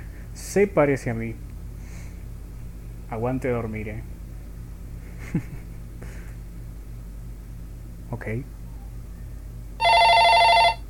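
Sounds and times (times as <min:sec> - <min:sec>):
speech: 0:00.5 - 0:01.4, 0:03.1 - 0:04.2, 0:05.3 - 0:05.6, 0:08.1 - 0:08.6
laughter: 0:05.1 - 0:06.3
telephone ringing on a bedside table: 0:09.8 - 0:10.8.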